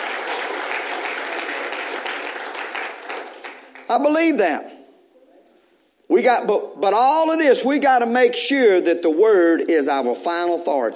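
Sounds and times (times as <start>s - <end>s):
audience applause in praise: 0.0s - 3.9s
speech: 3.9s - 4.7s, 6.2s - 10.9s.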